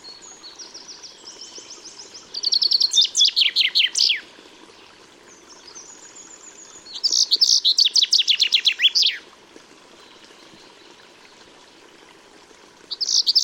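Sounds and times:
Common chaffinch singing trilled phrases: 0:00.0 - 0:04.2, 0:05.7 - 0:09.2, 0:12.9 - 0:13.4.

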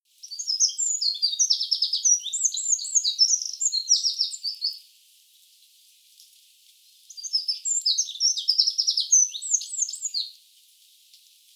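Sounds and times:
Eurasian wren singing: 0:00.2 - 0:04.8, 0:07.1 - 0:10.3.

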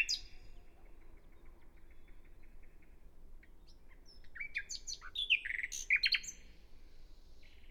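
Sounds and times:
Common nightingale Luscinia megarhynchos singing: 0:00.0 - 0:00.7, 0:03.4 - 0:06.4
background hiss: 0:00.0 - 0:07.6.

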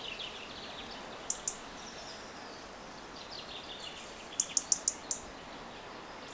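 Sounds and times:
European robin Erithacus rubecula ticking calls: 0:00.0 - 0:02.3, 0:04.3 - 0:05.3
steady background hiss: 0:00.0 - 0:06.3.

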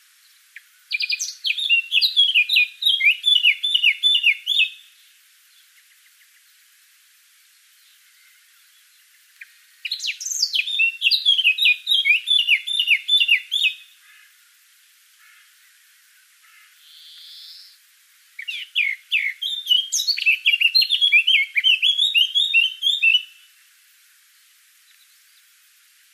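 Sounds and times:
Eurasian blackcap Sylvia atricapilla singing chattering phrases: 0:00.9 - 0:04.8, 0:09.4 - 0:13.8, 0:18.4 - 0:23.3.

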